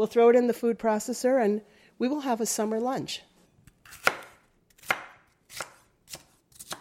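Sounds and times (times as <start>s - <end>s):
speech: 0.0s - 3.3s
knife chopping vegetables on a cutting board: 3.8s - 6.7s.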